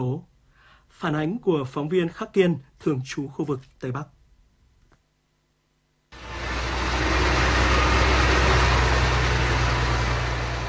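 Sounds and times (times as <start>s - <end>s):
speech: 0.0s - 0.3s, 0.9s - 4.2s
excavators and bulldozers roaring at a mountain roadside landslide: 6.2s - 10.6s.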